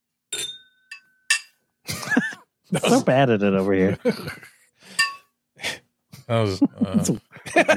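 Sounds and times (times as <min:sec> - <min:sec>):
glasses clinking together in a toast: 0:00.3 - 0:01.6, 0:04.9 - 0:05.3
speech: 0:02.7 - 0:04.5, 0:06.3 - 0:07.7.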